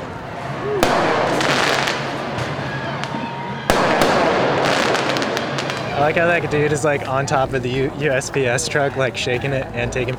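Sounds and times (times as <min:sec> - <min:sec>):
loud firework bursts: 0:00.0 - 0:07.1
fireworks going off near a crowd gathered on a highway: 0:00.0 - 0:08.4
speech: 0:06.0 - 0:10.1.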